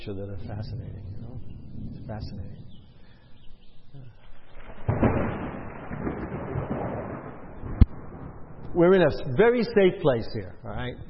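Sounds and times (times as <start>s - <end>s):
speech: 0.0s - 2.7s, 8.7s - 11.0s
rolling thunder: 0.0s - 3.0s, 4.4s - 9.6s.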